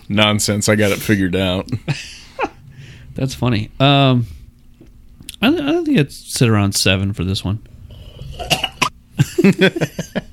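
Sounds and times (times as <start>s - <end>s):
speech: 0.1s - 2.2s, 3.2s - 4.4s, 5.4s - 7.7s, 9.4s - 10.3s
coughing fit from inhaling beer while tasting: 8.4s - 8.9s.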